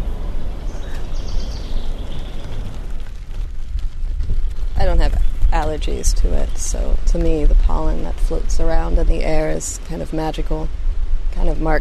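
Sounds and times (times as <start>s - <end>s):
thin high bird chirps and warbles: 0.0s - 2.7s
steady low rumble of distant traffic: 0.0s - 11.7s
speech: 5.0s - 10.8s, 11.4s - 11.7s.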